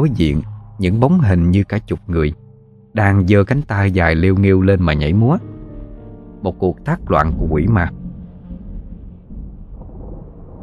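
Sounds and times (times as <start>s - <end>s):
thunder rumbling in a storm: 0.0s - 2.4s, 5.4s - 10.6s
speech: 0.0s - 5.5s, 6.4s - 8.0s.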